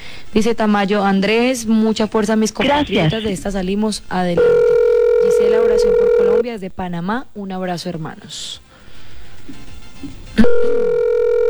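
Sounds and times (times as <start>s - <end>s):
speech: 0.3s - 4.8s, 5.4s - 8.6s
telephone ringing tone on an unanswered call: 4.4s - 6.4s, 10.4s - 11.4s.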